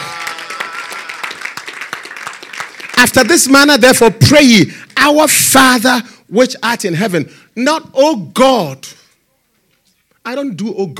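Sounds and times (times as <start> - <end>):
congregation clapping during a church service: 0.0 - 5.4
speech: 3.0 - 9.0, 10.3 - 10.9.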